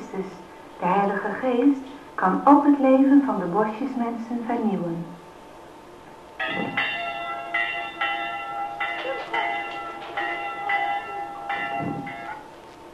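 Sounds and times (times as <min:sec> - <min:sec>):
speech: 0:00.2 - 0:05.2
church bell ringing: 0:06.4 - 0:12.6.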